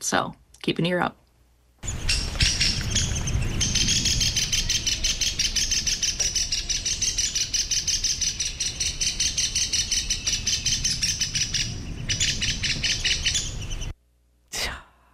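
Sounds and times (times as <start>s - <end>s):
speech: 0.0s - 1.2s
downy woodpecker alarm calls: 1.8s - 13.9s
low rumble: 1.8s - 14.0s.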